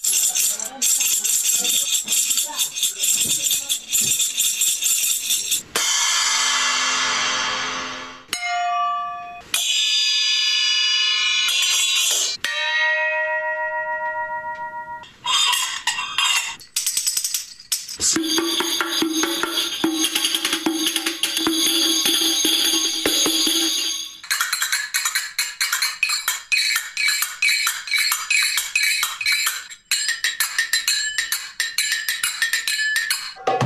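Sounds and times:
ancient-style sistrums shaken in a dense metallic rattle: 0.0s - 5.7s, 15.0s - 33.5s
ringing cymbal strikes with long shimmering tones: 5.7s - 15.0s, 18.0s - 24.2s.

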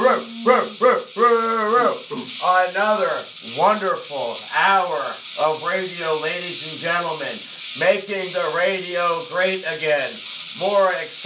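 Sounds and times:
man imitating dog barking in a radio studio: 0.0s - 1.2s
speech: 0.1s - 0.8s, 2.3s - 11.2s.

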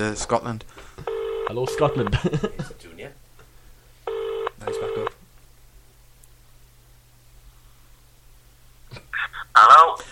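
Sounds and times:
speech: 0.0s - 3.2s
telephone ringing tone as an international call connects: 1.0s - 2.1s, 4.1s - 5.2s
laughter: 2.0s - 2.8s.

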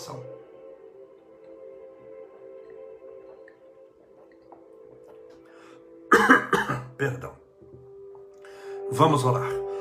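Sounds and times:
speech: 0.1s - 0.4s, 6.2s - 7.4s, 8.9s - 9.6s
person sipping water: 0.8s - 6.1s
soft wet swallowing and slurping: 1.1s - 5.6s.

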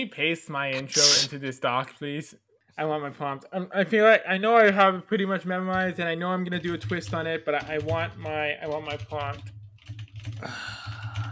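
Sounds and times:
speech: 0.0s - 9.6s, 10.3s - 10.8s
typing on a computer keyboard: 5.7s - 11.2s.

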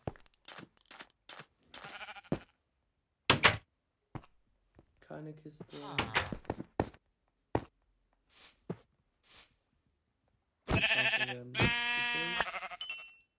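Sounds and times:
sheep bleating: 1.8s - 2.5s, 10.7s - 12.8s
speech: 5.2s - 6.6s.

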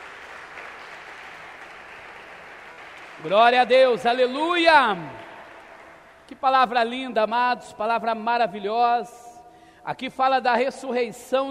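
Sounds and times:
crowd applauding after a prayer: 0.0s - 6.3s
speech: 3.2s - 5.2s, 6.3s - 9.2s, 9.8s - 11.4s.

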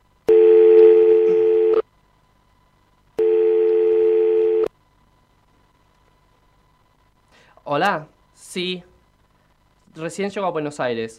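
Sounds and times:
steady low-pitched telephone line tone while a call is placed: 0.3s - 1.8s, 3.2s - 4.7s
speech: 7.7s - 8.9s, 10.0s - 11.1s.

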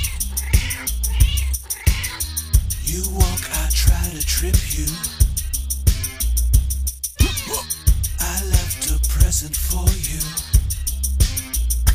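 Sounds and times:
cat meowing: 0.0s - 2.4s, 7.2s - 7.7s
steady rhythmic beat: 0.0s - 11.9s
speech: 2.9s - 5.2s, 9.3s - 10.5s.

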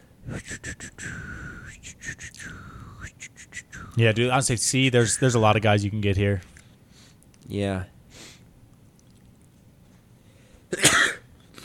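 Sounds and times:
faint breath: 1.0s - 1.7s, 2.4s - 3.1s, 6.9s - 7.2s, 10.2s - 10.7s
speech: 4.0s - 6.5s, 7.5s - 8.0s
person sneezing: 10.7s - 11.6s.

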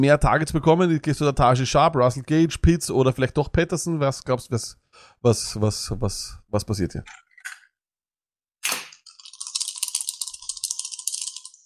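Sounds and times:
speech: 0.0s - 7.6s
dice clacking, knocking, rattling and rolling: 9.0s - 11.6s.

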